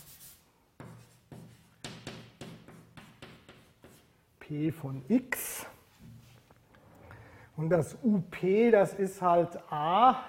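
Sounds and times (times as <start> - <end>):
pen scratching out mathematical symbols by hand: 0.0 - 4.1
speech: 4.5 - 5.7, 7.6 - 10.2.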